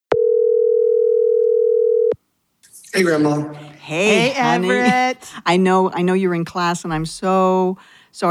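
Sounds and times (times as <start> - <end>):
telephone dial tone while placing a phone call: 0.1 - 2.1
speech: 3.0 - 8.2.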